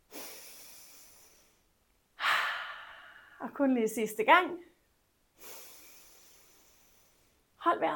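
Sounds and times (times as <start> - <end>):
long airy breath drawn in: 0.0 - 1.6, 2.2 - 3.4, 5.4 - 7.4
loud rushing breath: 0.0 - 3.4, 5.4 - 7.4
speech: 3.4 - 4.7.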